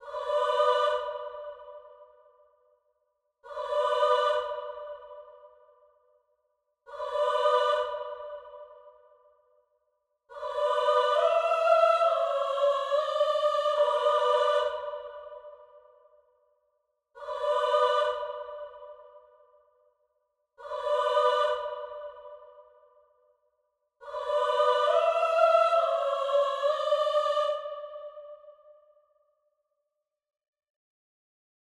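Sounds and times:
drill choir melody loop in B minor: 0.0s - 2.5s, 3.4s - 6.0s, 6.8s - 9.5s, 10.3s - 16.3s, 17.2s - 20.0s, 20.6s - 23.2s, 24.0s - 28.9s.

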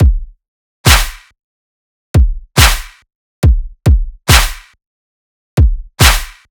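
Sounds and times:
dubstep kick drum: 0.0s - 1.2s, 2.2s - 4.7s, 5.6s - 6.5s
dubstep clap: 0.9s - 1.3s, 2.6s - 3.0s, 4.3s - 4.8s, 6.0s - 6.5s.

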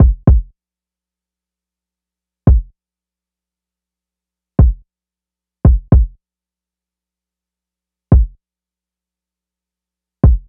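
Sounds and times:
diffuse lo-fi kick drum loop at 85 BPM: 0.0s - 0.5s, 2.5s - 2.7s, 4.6s - 4.8s, 5.7s - 6.2s, 8.1s - 8.4s, 10.2s - 10.4s.

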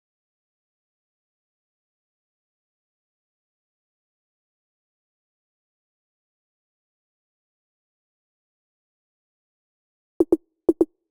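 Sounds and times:
percussion drum loop: 10.2s - 10.9s.

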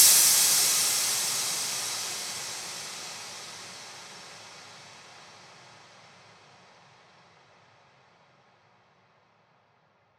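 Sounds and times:
psytrance hi-hat crash effect: 0.0s - 5.5s.

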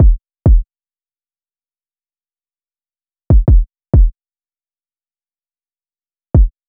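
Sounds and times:
kick drum loop: 0.0s - 0.6s, 3.3s - 4.1s, 6.4s - 6.6s.

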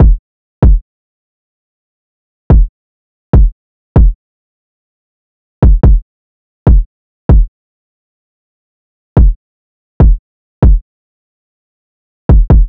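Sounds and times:
144 BPM drill drum loop with kick: 0.0s - 0.8s, 3.3s - 4.2s, 5.6s - 6.0s, 6.7s - 7.5s, 9.2s - 9.4s, 10.0s - 10.8s, 12.3s - 12.6s.

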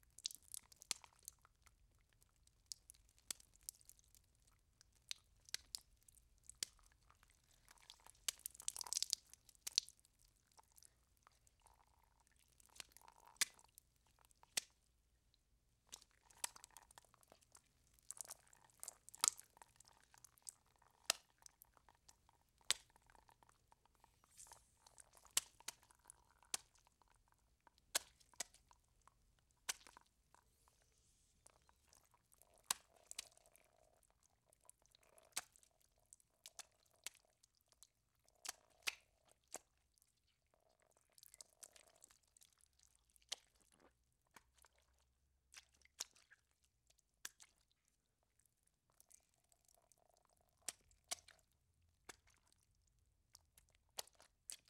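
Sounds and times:
blood oozing and dripping: 0.0s - 54.6s.

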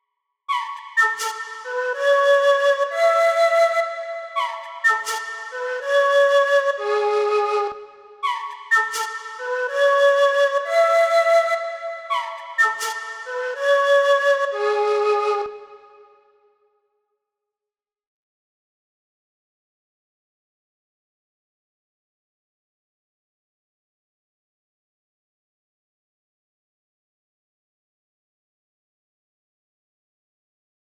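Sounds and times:
flute loop in F sharp minor: 0.5s - 16.0s.

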